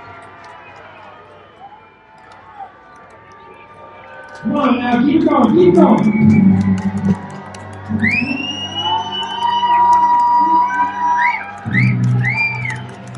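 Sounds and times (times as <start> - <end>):
large crowd cheering at a baseball game on a Christmas evening: 0.0 - 13.1
speech: 4.4 - 7.2, 8.0 - 8.5
shrill whistles: 4.6 - 6.9, 7.9 - 13.1.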